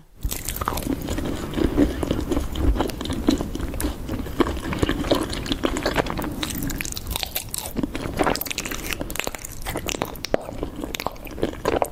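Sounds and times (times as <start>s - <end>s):
wet chewing and biting into honeycomb beeswax with honey: 0.2s - 11.9s.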